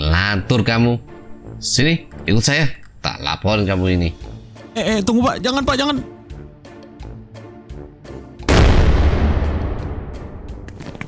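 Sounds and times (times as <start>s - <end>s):
speech: 0.3s - 6.1s
loud firecracker blast from a rooftop: 8.5s - 10.7s.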